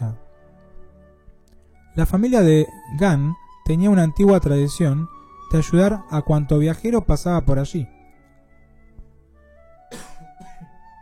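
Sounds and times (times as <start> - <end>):
speech: 2.0 - 8.0
short faint cough: 9.9 - 10.8.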